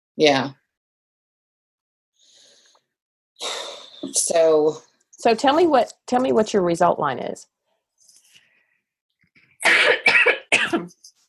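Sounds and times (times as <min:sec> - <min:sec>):
speech: 0:00.2 - 0:00.6, 0:03.4 - 0:07.5
throat clearing and coughing from a tickle in the throat: 0:09.6 - 0:11.0.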